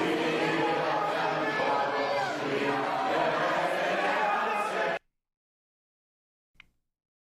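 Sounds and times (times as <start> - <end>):
crowd of many voices roaring at a protest rally: 0.0 - 5.0.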